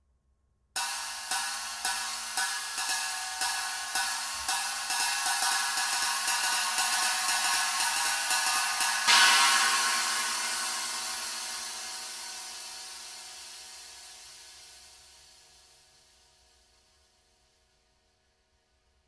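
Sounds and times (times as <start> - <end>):
22in swish knocker cymbal with rivets: 0.8 - 14.1.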